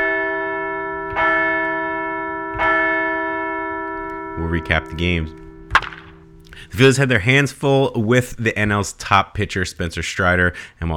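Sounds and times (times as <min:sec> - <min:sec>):
large bell ringing: 0:00.0 - 0:06.4
speech: 0:04.5 - 0:05.5, 0:06.7 - 0:10.9.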